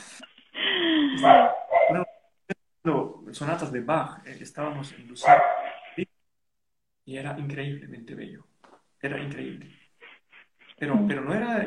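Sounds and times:
dog barking: 1.2 - 2.1, 5.2 - 6.0
speech: 2.8 - 6.1, 7.1 - 9.8, 10.8 - 11.6.

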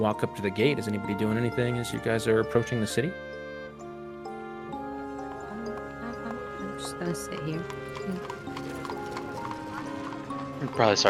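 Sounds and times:
speech: 0.0 - 3.4, 6.8 - 8.4, 10.6 - 11.0
sustained tonal musical background: 0.0 - 11.0
horse hooves clip-clopping: 4.0 - 11.0.

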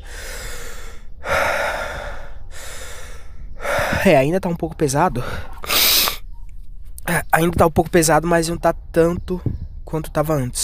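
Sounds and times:
deep breathing through a congested chest: 0.0 - 4.3, 5.1 - 6.2
speech: 4.0 - 5.5, 7.4 - 10.6.

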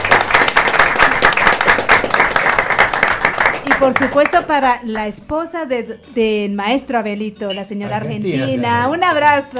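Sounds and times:
crowd applauding: 0.0 - 4.5
speech: 3.8 - 9.5.

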